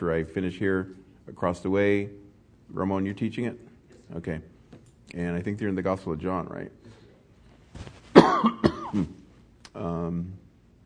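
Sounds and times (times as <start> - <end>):
speech: 0.0 - 4.5, 5.1 - 6.9, 7.8 - 9.2, 9.8 - 10.4
harsh coughs: 8.1 - 9.2
raspy voiced throat clearing: 8.2 - 9.3.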